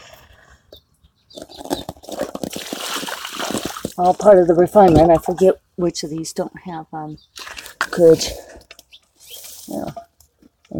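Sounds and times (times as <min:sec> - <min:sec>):
water from a plant watering system sloshing and gurgling: 0:02.0 - 0:05.6
speech: 0:04.0 - 0:07.4, 0:08.0 - 0:08.5, 0:09.7 - 0:10.0.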